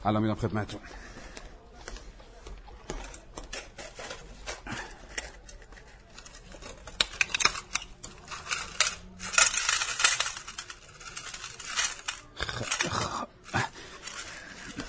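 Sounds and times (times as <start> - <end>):
speech: 0.0 - 1.2
medium-sized metal nails clinking and rattling as they are scooped: 5.2 - 13.1.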